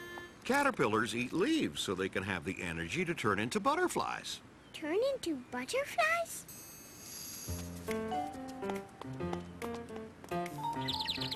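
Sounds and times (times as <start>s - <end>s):
speech: 0.5s - 6.6s, 7.5s - 8.3s
bird chirping: 10.5s - 11.3s.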